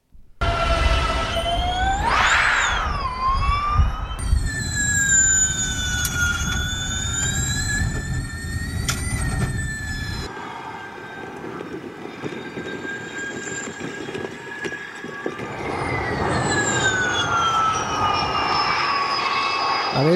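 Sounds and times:
Formula E electric race cars whining past: 0:00.4 - 0:20.1.

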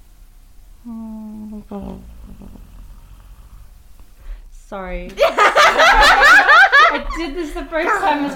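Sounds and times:
low noise: 0:00.0 - 0:08.3
person imitating a cat purring: 0:00.8 - 0:04.2
speech: 0:01.6 - 0:02.7, 0:04.7 - 0:08.3
laughter: 0:05.2 - 0:08.3.

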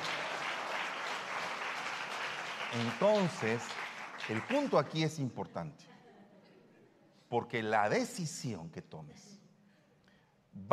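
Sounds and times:
crowd applauding: 0:00.0 - 0:05.2
speech: 0:02.7 - 0:06.0, 0:07.3 - 0:09.4.

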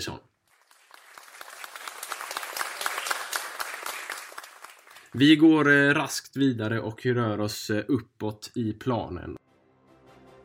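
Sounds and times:
speech: 0:00.0 - 0:00.3, 0:05.1 - 0:09.4
crowd applauding: 0:00.4 - 0:05.3.

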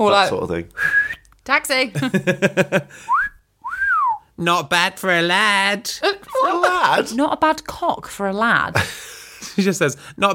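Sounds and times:
speech: 0:00.0 - 0:03.2, 0:04.4 - 0:10.3
person whistling two upward-sliding notes: 0:00.8 - 0:01.2, 0:03.1 - 0:04.2
laughter: 0:02.0 - 0:03.0, 0:06.0 - 0:07.2.

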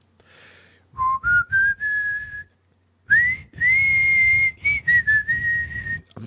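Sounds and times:
person whistling a slow wavering tune: 0:01.0 - 0:02.5, 0:03.1 - 0:06.1.

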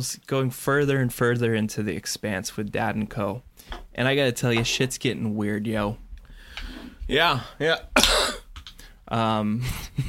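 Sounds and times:
speech: 0:00.0 - 0:06.0, 0:06.6 - 0:08.2, 0:09.1 - 0:10.0
odd strained cough or throat-clearing: 0:08.0 - 0:08.5.

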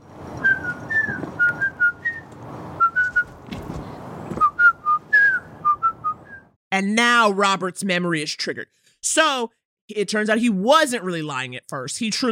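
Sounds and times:
person whistling a tune: 0:00.4 - 0:03.3, 0:04.4 - 0:06.6
speech: 0:06.8 - 0:12.3.

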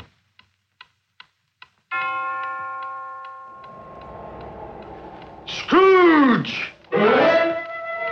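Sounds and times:
clock bell striking one: 0:01.9 - 0:06.9
low rumbling: 0:03.4 - 0:08.0.

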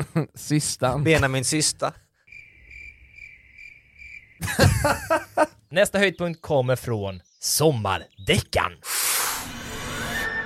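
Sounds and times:
speech: 0:00.1 - 0:02.0, 0:04.4 - 0:09.0
cricket chirping: 0:02.3 - 0:05.3
laughter: 0:04.4 - 0:05.6.

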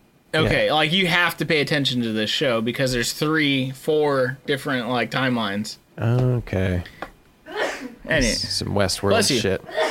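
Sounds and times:
speech: 0:00.3 - 0:07.0, 0:08.1 - 0:09.8
person sneezing: 0:07.5 - 0:08.0, 0:09.7 - 0:09.8.

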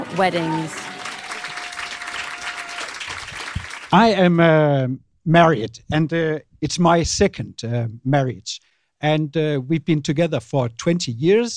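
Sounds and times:
audience clapping: 0:00.0 - 0:04.3
speech: 0:00.2 - 0:00.8, 0:03.9 - 0:11.5.

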